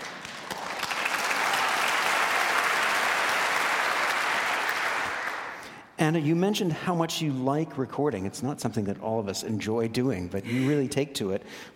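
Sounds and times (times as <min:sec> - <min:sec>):
audience applause after a piano performance: 0:00.0 - 0:05.7
speech: 0:06.0 - 0:11.7.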